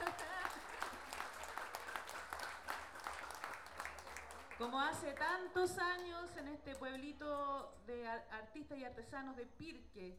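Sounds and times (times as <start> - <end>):
audience applause at an improvised-verse tournament: 0.0 - 5.0
speech: 4.6 - 10.1.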